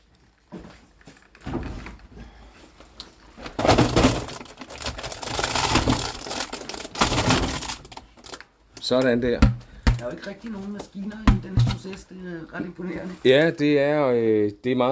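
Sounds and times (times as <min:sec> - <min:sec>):
contents of a 20-kilo load poured by hand into a fermentation box: 0:03.8 - 0:08.4
speech: 0:08.9 - 0:14.9
knocks: 0:09.3 - 0:10.2, 0:11.2 - 0:11.9.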